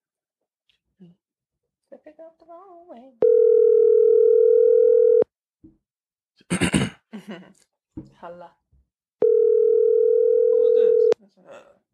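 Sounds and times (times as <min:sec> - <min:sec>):
speech: 0:01.0 - 0:01.2, 0:01.9 - 0:04.8, 0:06.4 - 0:08.6, 0:11.3 - 0:11.8
outgoing phone call ringing tone: 0:03.2 - 0:05.3, 0:09.2 - 0:11.2.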